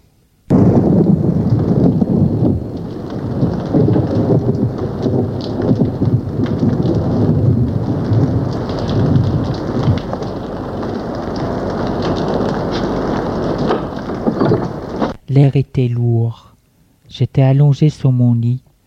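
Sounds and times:
deep thunder rumbling: 0.5 - 15.2
heavy rain pouring in a thunderstorm: 0.5 - 15.2
speech: 15.5 - 16.5, 17.1 - 18.6.

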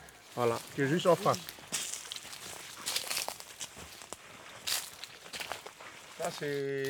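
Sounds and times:
footsteps crunching through dry vegetation on a narrow field path: 0.0 - 6.8
rustling of grass or leaves: 0.0 - 6.8
speech: 0.4 - 1.6, 6.3 - 6.8.

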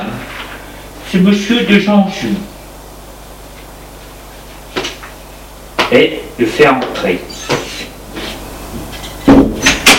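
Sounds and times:
speech: 1.1 - 2.5, 5.9 - 7.6
door knocking as it settles: 9.3 - 9.9.

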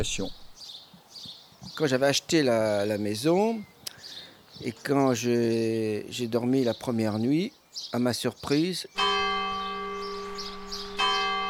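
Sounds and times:
speech: 0.0 - 0.4, 1.8 - 3.7, 4.6 - 9.0
church bell ringing at night: 9.0 - 11.4.

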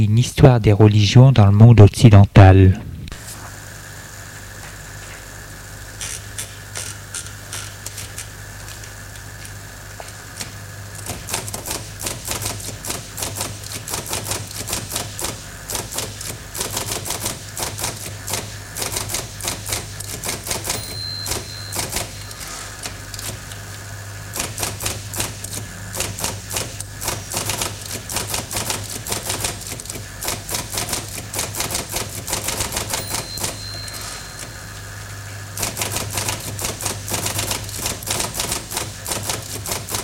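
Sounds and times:
speech: 0.0 - 2.9
mechanical typewriter typing a manuscript: 11.0 - 23.6, 24.4 - 33.6, 35.6 - 40.0.

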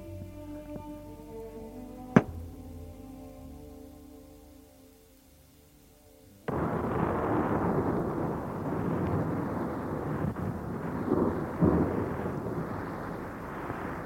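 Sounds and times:
dense roaring storm noise: 6.5 - 14.0
sharp thunder crack: 6.5 - 14.0.

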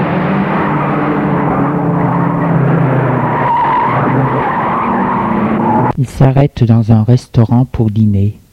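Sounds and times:
old car driving with a loud steady rumble: 0.0 - 5.9
old car tires squealing and skidding as it brakes to stop: 0.0 - 5.9
speech: 6.0 - 8.4.

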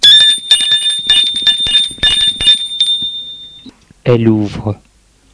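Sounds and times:
doorbell ringing with metallic strikes: 0.0 - 3.7
speech: 4.1 - 4.9.

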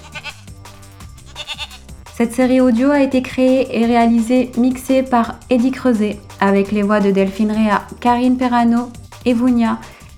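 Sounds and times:
ewe bleating: 0.0 - 0.5, 1.2 - 1.9
speech: 2.2 - 10.0.

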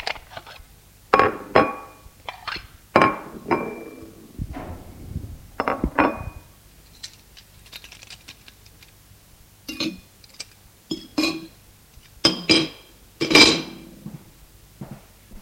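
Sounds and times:
plates and cutlery clinking as a table is set: 1.2 - 4.2, 5.6 - 7.2, 9.7 - 11.6, 12.3 - 13.9.

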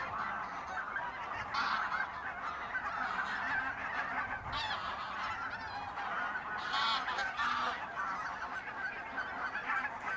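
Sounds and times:
flock of geese honking and cackling in a polder area: 0.0 - 10.1.

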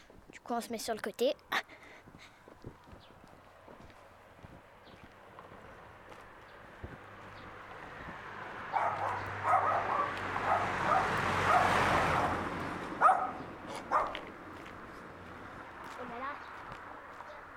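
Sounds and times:
speech: 0.5 - 2.4
passing car: 3.4 - 17.5
dog barking on a street during a walk: 8.7 - 12.4, 13.0 - 14.2.

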